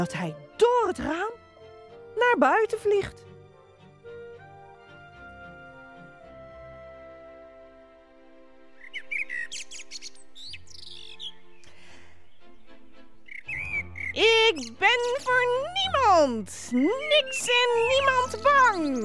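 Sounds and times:
speech: 0.0s - 1.4s, 2.2s - 3.3s, 14.2s - 19.0s
canary whistling songs loudly: 8.8s - 11.6s, 13.2s - 19.0s.

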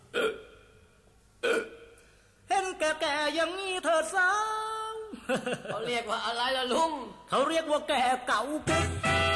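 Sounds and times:
hiccups: 0.0s - 0.6s, 1.4s - 1.9s
speech: 2.8s - 4.6s, 5.3s - 9.0s.

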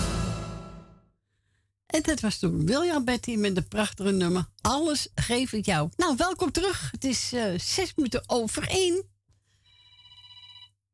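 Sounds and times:
speech: 2.0s - 9.1s
telephone ringing with shrill electronic trill: 9.6s - 10.8s.

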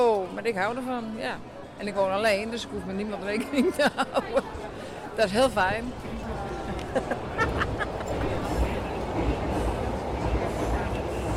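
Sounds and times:
murmur of voices: 0.0s - 11.3s
speech: 0.4s - 7.4s
laughter: 3.4s - 4.8s, 6.6s - 8.8s
metro train rumbling overhead with faint rattling and clatter: 5.4s - 11.3s.

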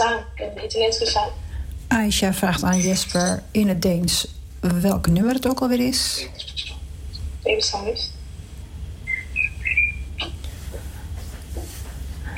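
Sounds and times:
steady low rumble: 0.0s - 12.3s
speech: 0.2s - 6.8s, 7.5s - 8.2s
birds chirping through open window: 2.4s - 4.3s, 5.1s - 10.5s.

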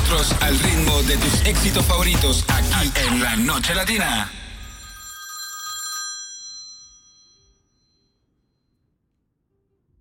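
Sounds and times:
speech: 0.1s - 4.4s
telephone bell ringing with metallic jangle: 4.4s - 8.3s.

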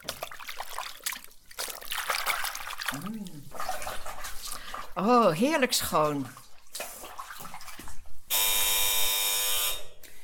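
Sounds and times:
splashing: 0.0s - 8.3s
speech: 2.9s - 6.4s
loud electric doorbell buzzing: 8.3s - 10.0s.

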